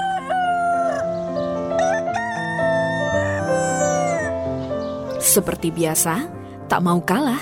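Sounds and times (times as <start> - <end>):
rooster crowing loudly in the morning: 0.0 - 1.1, 1.8 - 4.3
speech: 5.3 - 7.3.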